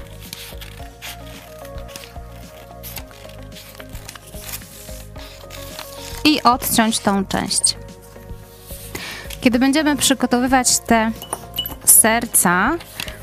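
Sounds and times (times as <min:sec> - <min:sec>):
sheet of paper being folded and creased into a square: 0:00.0 - 0:09.9, 0:12.7 - 0:13.2
speech: 0:06.2 - 0:07.8, 0:09.4 - 0:11.3, 0:12.0 - 0:12.9.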